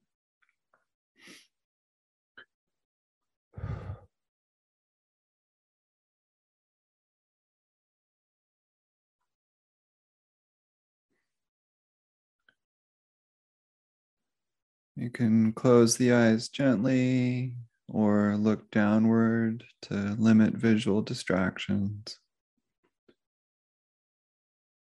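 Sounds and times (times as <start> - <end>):
deep breaths: 3.6 - 4.1
speech: 15.0 - 22.2.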